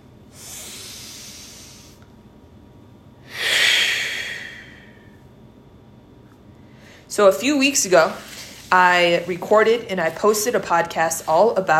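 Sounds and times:
deep breath in and out: 0:00.3 - 0:02.1, 0:03.2 - 0:05.2, 0:06.6 - 0:07.1
speech: 0:07.2 - 0:11.7.

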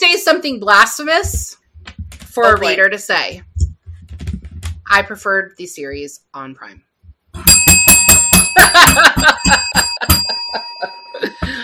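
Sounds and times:
speech: 0:00.4 - 0:01.6, 0:02.4 - 0:03.5, 0:04.9 - 0:06.9, 0:08.8 - 0:11.6
bicycle bell ringing: 0:07.4 - 0:11.6.

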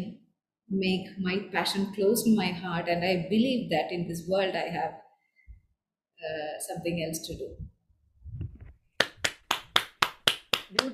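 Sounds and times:
speech: 0:00.7 - 0:05.0, 0:06.2 - 0:07.6, 0:10.7 - 0:10.9
person clapping hands on an online call: 0:09.0 - 0:10.9.

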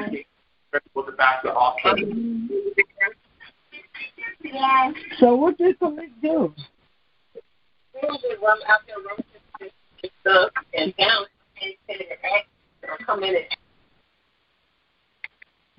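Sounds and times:
tinny background chatter through a phone line: 0:00.0 - 0:00.2, 0:00.8 - 0:13.6
speech: 0:00.2 - 0:02.9, 0:04.0 - 0:06.7, 0:08.0 - 0:13.6
faint clicks: 0:15.2 - 0:15.6.

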